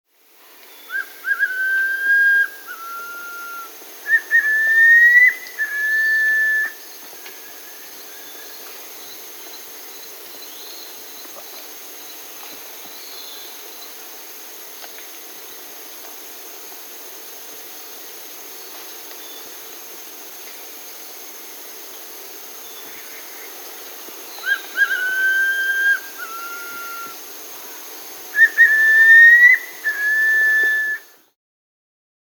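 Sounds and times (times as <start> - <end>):
Striolated Puffbird Nystalus striolatus calling in Peru: 0.9 - 6.8, 24.2 - 31.2.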